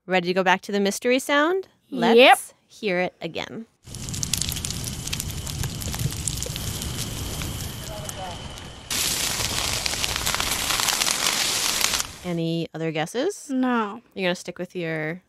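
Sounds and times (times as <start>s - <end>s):
speech: 0.1s - 4.0s, 12.2s - 15.2s
trees burning in a California wildfire: 3.8s - 12.4s.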